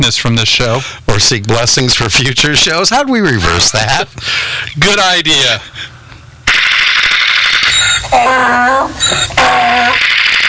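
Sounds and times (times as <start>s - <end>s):
speech: 0.0s - 5.9s, 8.1s - 10.2s
loud sustained burst of rapid gunfire: 6.5s - 7.7s, 10.0s - 10.4s
high squealing wailing tones: 7.4s - 10.4s.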